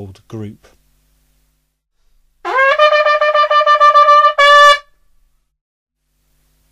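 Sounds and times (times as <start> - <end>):
doubled horn playing: 2.5 - 5.0.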